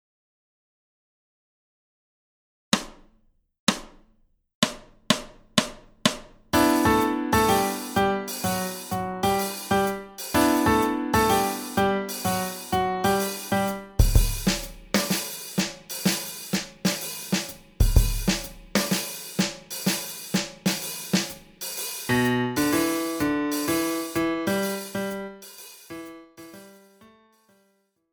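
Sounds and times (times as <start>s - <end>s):
rhythmic pattern: 6.6s - 26.9s.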